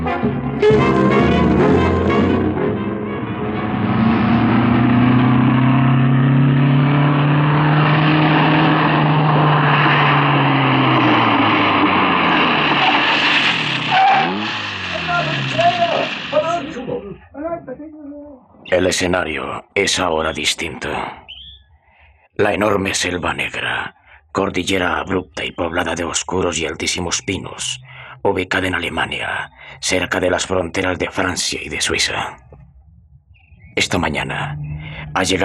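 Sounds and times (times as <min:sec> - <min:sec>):
Formula 1 race car engines screaming in a car race: 0:00.2 - 0:17.3, 0:33.8 - 0:35.4
speech: 0:19.0 - 0:21.2, 0:22.4 - 0:32.5, 0:33.7 - 0:35.4.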